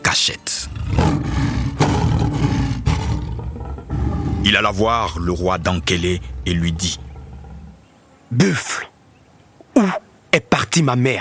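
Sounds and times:
speech: 0.1 - 1.3, 4.5 - 7.0, 8.3 - 8.9, 9.8 - 11.1
lion roaring with a deep rumbling growl: 0.6 - 7.9.

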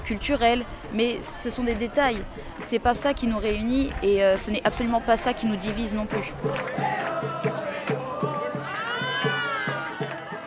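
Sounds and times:
speech: 0.1 - 8.0
crowd rhythmic chanting or clapping: 1.7 - 10.4
dense crowd of pilgrims cheering at a celebration: 4.8 - 10.4.

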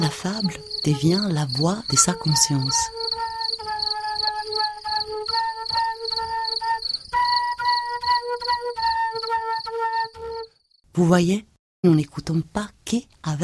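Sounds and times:
cricket chirping with pulsing trill: 0.0 - 10.6
speech: 0.1 - 3.2, 11.0 - 13.4.

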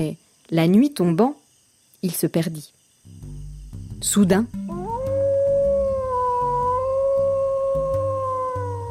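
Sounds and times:
speech: 0.0 - 1.4, 2.0 - 3.2, 4.0 - 4.7
distant wolf howling: 4.6 - 8.9.

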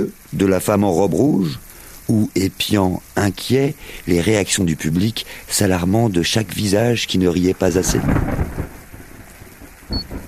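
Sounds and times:
speech: 0.0 - 8.7
steady rain: 0.0 - 10.2
low rolls of thunder rumbling: 7.6 - 10.2.

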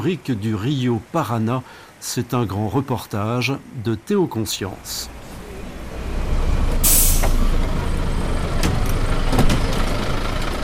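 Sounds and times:
speech: 0.0 - 5.2
large bus engine idling: 4.4 - 10.6
bus air brakes hissing: 6.8 - 7.6.

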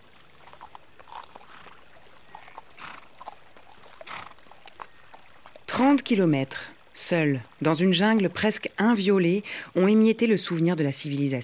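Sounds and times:
ridden horse hooves clip-clopping at a walking pace on an expedition in Celebes: 0.0 - 8.8
hiss: 0.0 - 10.5
speech: 5.8 - 11.4.

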